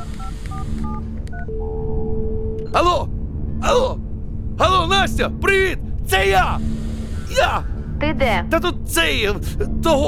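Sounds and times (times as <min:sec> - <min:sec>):
mobile phone keypad dual-tone beeps: 0:00.0 - 0:01.9
low hum: 0:00.0 - 0:10.0
speech: 0:02.8 - 0:10.0.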